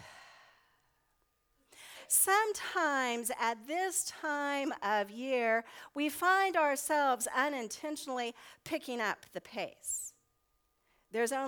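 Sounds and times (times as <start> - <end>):
deep breath in and out: 0.0 - 1.0, 1.7 - 2.1
speech: 2.1 - 9.9, 11.1 - 11.4.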